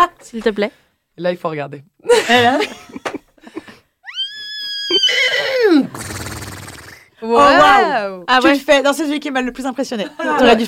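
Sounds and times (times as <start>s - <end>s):
speech: 0.3s - 3.0s, 7.2s - 10.6s
laughter: 2.1s - 3.8s
person imitating a horse neighing: 4.0s - 7.1s.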